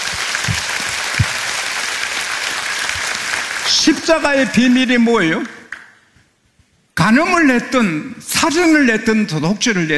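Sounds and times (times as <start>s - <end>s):
large audience applause: 0.0s - 4.6s
speech: 3.9s - 5.6s, 7.0s - 9.9s.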